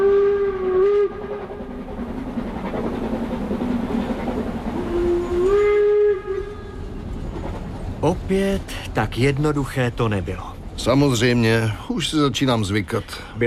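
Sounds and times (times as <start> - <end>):
steam train whistle blast: 0.0 - 1.4, 4.8 - 6.9
steam train travelling toward Siberia: 0.0 - 13.4
speech: 8.1 - 13.4.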